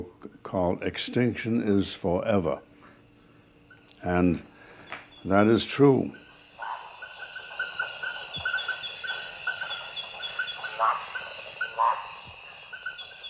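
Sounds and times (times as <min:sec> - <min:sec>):
speech: 0:00.0 - 0:02.7, 0:04.0 - 0:04.5, 0:05.2 - 0:06.2
steady high rainforest insect drone: 0:00.6 - 0:13.2
rhythmic pulsing calls in a rainforest: 0:01.1 - 0:13.2
scattered bird chirps in a rainforest: 0:04.8 - 0:13.2.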